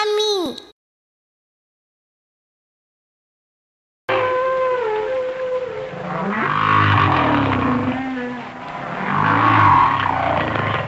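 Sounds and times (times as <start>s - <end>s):
humpback whale song: 4.1s - 10.8s.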